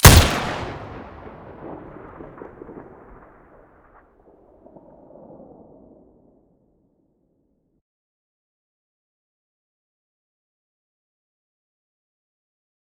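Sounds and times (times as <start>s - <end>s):
WA2000 rifle muzzle blast: 0.0s - 2.8s.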